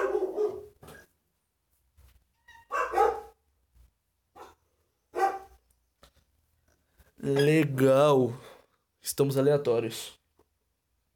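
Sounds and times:
dogs barking in short sharp bursts: 0.0 - 0.8, 2.7 - 3.4, 4.4 - 5.6
speech: 7.2 - 10.2.

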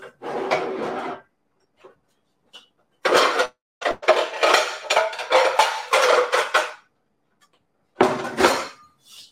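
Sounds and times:
cast iron wok clanking and scraping among pans: 3.0 - 6.9, 8.0 - 9.0.

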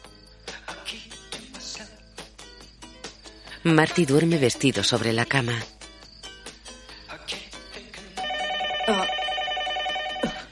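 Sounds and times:
speech: 3.6 - 5.8
telephone ringing: 8.2 - 10.5.

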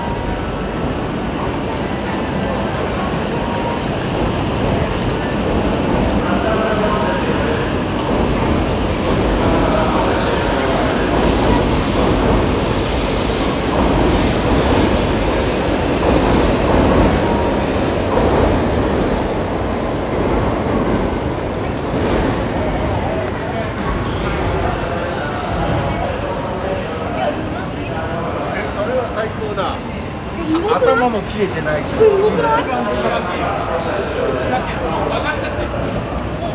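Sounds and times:
high-speed Shinkansen train rumbling and hissing at a station platform: 0.0 - 36.5
indistinct voices at a train station platform: 0.0 - 36.5.

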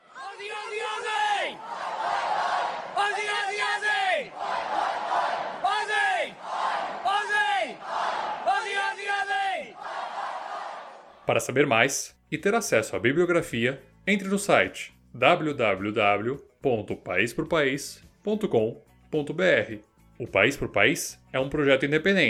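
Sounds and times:
large sports crowd chanting in unison: 0.0 - 11.3
speech: 11.3 - 22.2.

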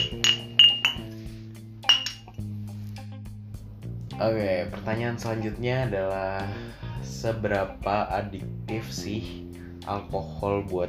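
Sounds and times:
glasses clinking in a toast: 0.0 - 1.2, 1.8 - 2.4
speech: 4.2 - 10.8.

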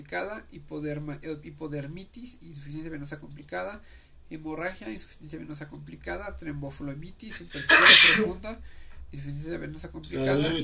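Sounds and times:
speech: 0.0 - 10.6
loud sharp sneeze: 7.3 - 8.4.

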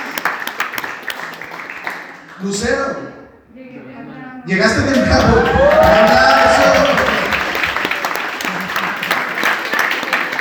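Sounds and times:
small group applauding: 0.0 - 2.6, 4.8 - 10.3
speech: 2.4 - 3.7, 4.5 - 6.3.

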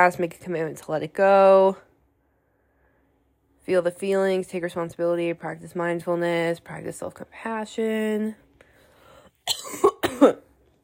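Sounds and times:
speech: 0.0 - 1.9, 3.7 - 8.4, 9.5 - 10.4
person coughing: 9.4 - 10.6.

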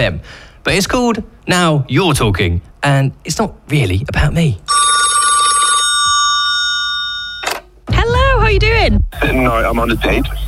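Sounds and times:
speech: 0.0 - 4.8, 8.6 - 10.4
telephone bell ringing: 4.7 - 7.6.

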